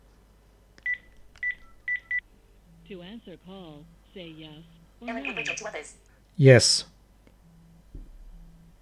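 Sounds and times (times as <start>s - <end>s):
speech: 2.9s - 7.0s
home phone keypad touch-tone dialing beeps: 5.1s - 5.7s.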